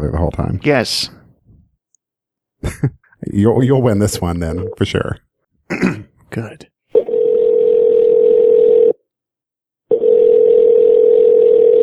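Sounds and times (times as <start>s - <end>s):
speech: 0.0s - 1.2s, 2.6s - 6.7s
phone dialing tone: 7.0s - 9.0s, 9.9s - 11.8s.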